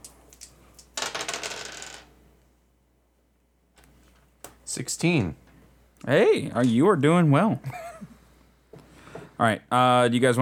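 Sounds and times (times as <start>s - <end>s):
dice clattering onto a hard table in a tabletop game: 0.0s - 2.1s
speech: 4.7s - 5.4s, 6.0s - 7.8s, 9.4s - 10.4s.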